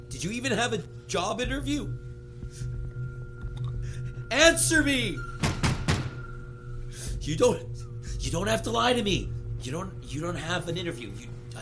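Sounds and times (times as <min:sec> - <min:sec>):
speech: 0:00.1 - 0:02.7, 0:04.3 - 0:05.3, 0:07.2 - 0:11.6
door shut with heavy thuds: 0:05.4 - 0:06.2.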